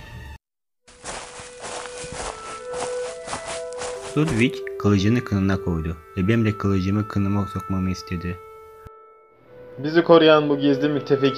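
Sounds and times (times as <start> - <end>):
footsteps thudding: 0.9 - 4.6
speech: 4.2 - 8.5, 9.8 - 11.3.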